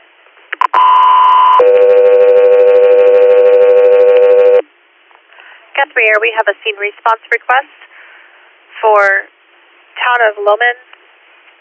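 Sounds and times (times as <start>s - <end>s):
two-tone radio paging alert: 0.7s - 4.6s
speech: 6.0s - 7.9s, 8.8s - 9.3s, 10.0s - 10.9s.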